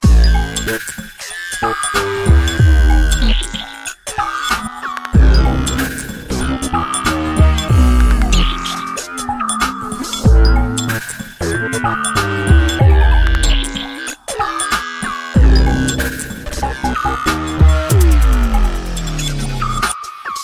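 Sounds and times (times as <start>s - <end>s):
big synth lead: 1.6s - 3.8s, 4.4s - 14.6s, 15.3s - 19.8s.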